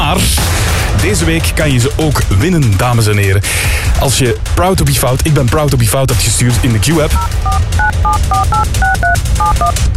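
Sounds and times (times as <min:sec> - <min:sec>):
speech: 0:01.1 - 0:09.9
telephone number dialed on a touch-tone keypad: 0:07.2 - 0:09.8.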